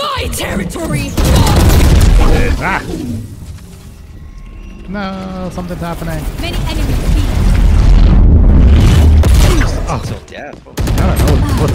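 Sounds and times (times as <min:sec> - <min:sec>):
speech: 0:00.2 - 0:01.2, 0:02.6 - 0:03.4, 0:04.9 - 0:07.4, 0:09.9 - 0:11.7
grenade explosion in a video game: 0:01.0 - 0:03.4, 0:06.2 - 0:10.1.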